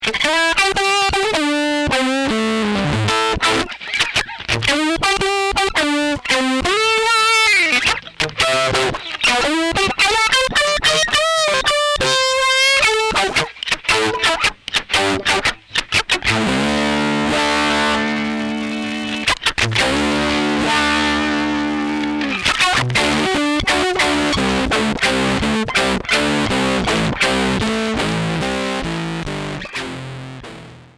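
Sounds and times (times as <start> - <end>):
rock groove: 0.1 - 30.9.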